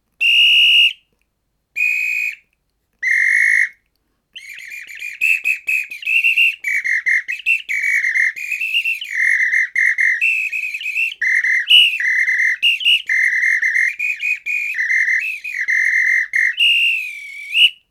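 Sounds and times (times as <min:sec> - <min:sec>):
whistle: 0:00.2 - 0:01.1, 0:01.8 - 0:03.8, 0:04.4 - 0:17.9.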